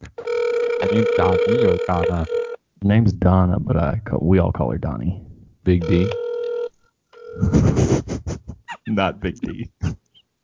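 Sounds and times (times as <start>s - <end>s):
ringback tone of an outgoing phone call: 0.2s - 2.6s, 5.8s - 7.6s
speech: 0.9s - 6.2s, 8.9s - 9.8s.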